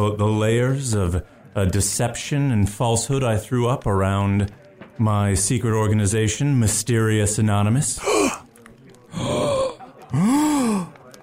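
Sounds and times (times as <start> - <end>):
speech: 0.0 - 8.4
people gasping: 8.0 - 11.2.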